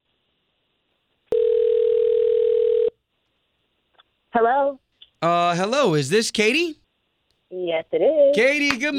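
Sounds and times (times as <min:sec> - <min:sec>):
loud buzzy telephone ringing tone: 0:01.3 - 0:03.0
speech: 0:04.3 - 0:04.8, 0:05.6 - 0:06.8, 0:07.7 - 0:08.9.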